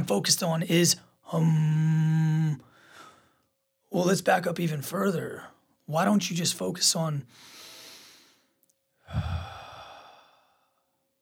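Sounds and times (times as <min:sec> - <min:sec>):
speech: 0:00.1 - 0:02.7, 0:03.9 - 0:07.6, 0:09.1 - 0:09.4
human breathing heard close-up through headphones: 0:02.7 - 0:03.5, 0:07.3 - 0:11.0.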